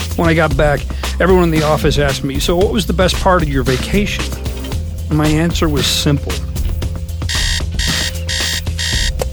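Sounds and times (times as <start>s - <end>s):
speech: 0.2s - 4.4s, 5.1s - 6.4s
alarm clock shrill electronic beeping: 7.3s - 9.2s.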